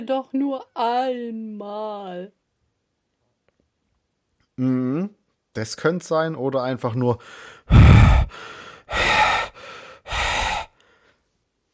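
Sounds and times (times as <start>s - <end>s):
speech: 0.0s - 2.4s, 4.6s - 9.2s
heavy breathing into microphone: 7.2s - 11.2s.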